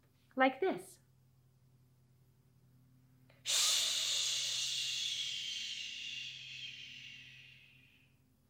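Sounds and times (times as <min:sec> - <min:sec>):
speech: 0:00.4 - 0:01.0
hissing exhale through the mouth imitating water running from a faucet: 0:03.5 - 0:08.0.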